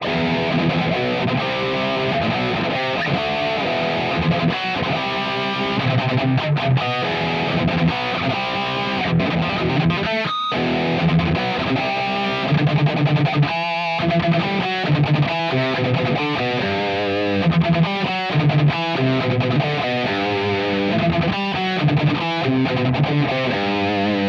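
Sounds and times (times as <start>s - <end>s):
electric guitar rhythm through amp modeler: 0.0s - 24.2s.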